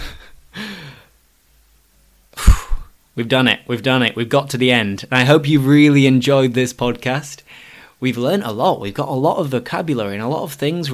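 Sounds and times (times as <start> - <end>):
person breathing in and out with a slight voiced sigh: 0.0 - 1.2, 2.4 - 3.0, 7.5 - 8.0
speech: 3.2 - 10.9.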